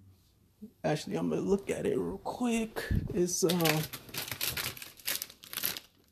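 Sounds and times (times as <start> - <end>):
speech: 0.8 - 4.0
thick cardstock paper crinkling and rustling as sheets are handled: 3.0 - 6.1.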